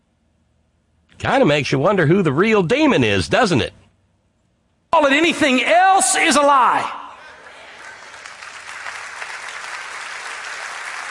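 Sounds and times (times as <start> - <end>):
speech: 1.2 - 3.8, 4.9 - 7.0
large audience clapping at an in-person service: 7.3 - 11.0.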